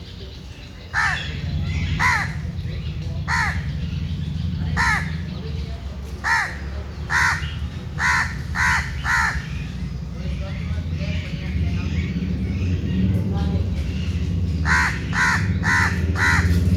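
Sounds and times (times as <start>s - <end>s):
faint bird calls: 0.0s - 16.7s
bird giving loud harsh caws: 0.9s - 2.6s, 3.2s - 4.1s, 4.7s - 5.3s, 6.2s - 9.9s, 14.6s - 16.7s
constant low rumble: 1.0s - 16.7s.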